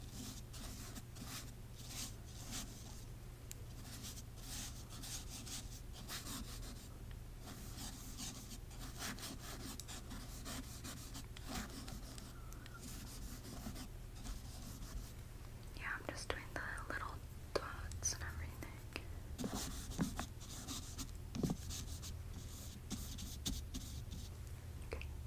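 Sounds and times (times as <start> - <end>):
soft rubbing and brushing strokes: 0.0 - 3.1, 3.7 - 15.2, 19.4 - 24.4
constant low hum: 0.0 - 25.2.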